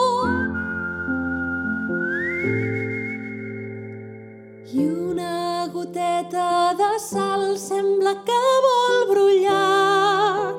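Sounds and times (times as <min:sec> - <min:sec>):
person whistling a melodic tune: 0:00.0 - 0:04.8
instrumental music: 0:00.0 - 0:10.5.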